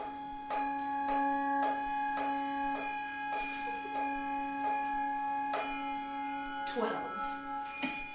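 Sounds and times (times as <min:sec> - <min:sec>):
clock bell striking in an open place: 0:00.0 - 0:08.1.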